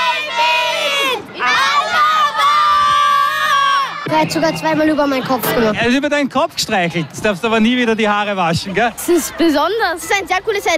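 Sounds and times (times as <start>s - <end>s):
crowd of children shouting in unison: 0.0s - 4.1s
speech: 4.2s - 10.7s.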